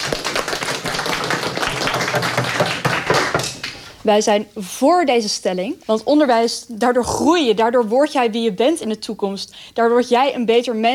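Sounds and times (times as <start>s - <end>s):
crowd clapping: 0.0s - 3.8s
speech: 4.0s - 10.9s.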